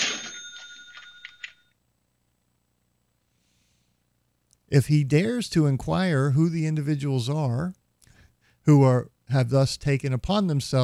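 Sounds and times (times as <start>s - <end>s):
cash register bell ringing: 0.0s - 1.7s
speech: 4.7s - 7.8s, 8.7s - 10.8s.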